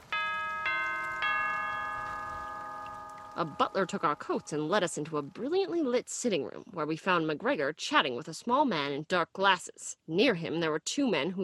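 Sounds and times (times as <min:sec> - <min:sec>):
doorbell chiming: 0:00.1 - 0:05.2
speech: 0:03.4 - 0:11.4.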